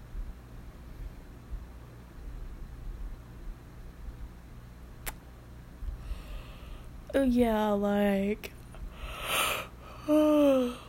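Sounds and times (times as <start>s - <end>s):
speech: 7.1s - 8.6s, 10.1s - 10.8s
person yawning: 10.0s - 10.8s.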